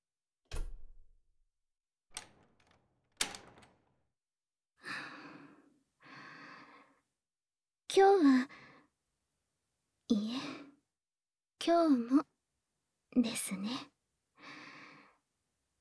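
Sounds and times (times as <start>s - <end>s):
church door being pulled shut: 0.5s - 1.2s, 2.1s - 4.0s
speech: 11.7s - 12.3s, 13.2s - 13.9s.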